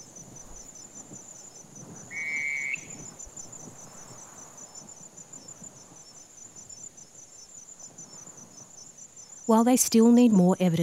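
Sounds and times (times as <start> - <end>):
steady wind noise on a windy night: 0.0 - 9.0
Night Parrot single short wavering whistled note: 2.1 - 3.0
speech: 9.5 - 10.8.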